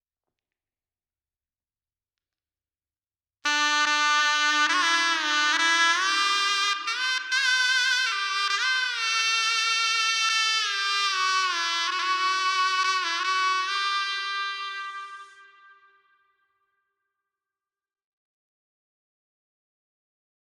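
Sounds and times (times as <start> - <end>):
shehnai melody in G with reverb: 3.5 - 16.8.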